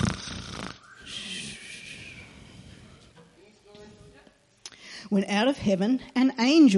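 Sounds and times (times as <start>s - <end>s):
voice imitating snoring: 0.0s - 2.2s
speech: 5.1s - 6.7s.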